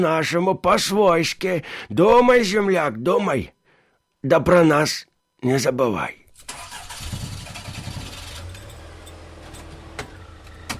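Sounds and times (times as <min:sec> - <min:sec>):
speech: 0:00.0 - 0:03.6, 0:04.2 - 0:06.5
Zhiguli car engine cranking and starting: 0:06.3 - 0:10.7.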